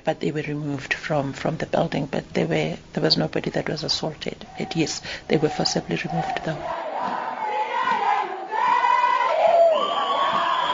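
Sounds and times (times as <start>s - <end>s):
speech: 0.0s - 7.2s
crowd of protesting workers and students chanting and shouting at a campus gate: 4.4s - 10.7s.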